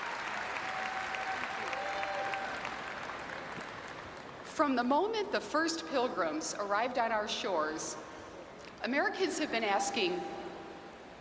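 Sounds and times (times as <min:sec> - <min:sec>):
crowd applauding a woman: 0:00.0 - 0:04.4
speech: 0:04.6 - 0:08.1, 0:08.8 - 0:10.4.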